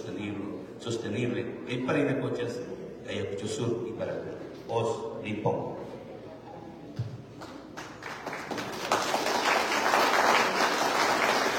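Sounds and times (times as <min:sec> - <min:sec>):
speech: 0:00.8 - 0:06.0
crowd applause: 0:07.4 - 0:11.5.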